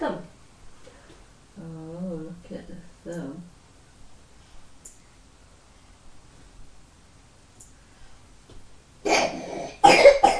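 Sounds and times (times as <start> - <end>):
person coughing hard: 9.1 - 10.3.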